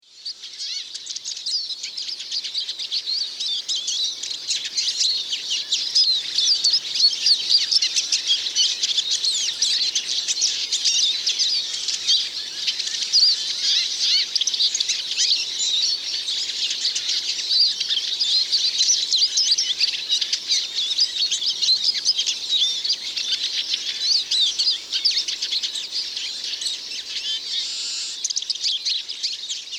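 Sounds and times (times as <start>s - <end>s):
Eurasian siskin in Obelfing: 0.0s - 29.7s.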